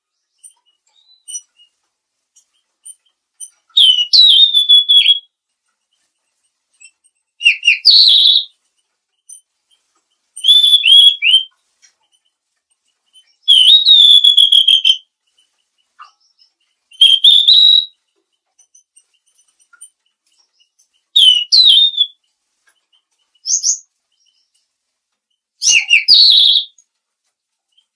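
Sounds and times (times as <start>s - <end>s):
mangrove blue flycatcher whistling: 3.8s - 5.3s, 7.4s - 8.5s, 10.4s - 11.5s, 13.2s - 15.0s, 16.0s - 18.0s, 20.6s - 22.2s, 23.4s - 23.8s, 25.6s - 26.8s.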